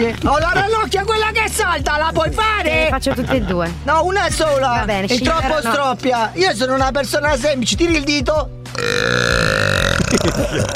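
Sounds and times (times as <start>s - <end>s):
laughter: 0.0s - 1.2s, 2.0s - 3.8s, 5.1s - 5.9s, 9.6s - 10.7s
speech: 0.0s - 9.5s, 10.1s - 10.7s
long loud rumbling burp: 8.7s - 10.7s.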